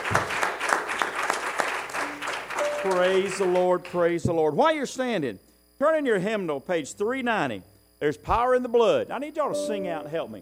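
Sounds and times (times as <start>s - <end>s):
church congregation applauding: 0.0s - 4.0s
speech: 2.8s - 10.4s.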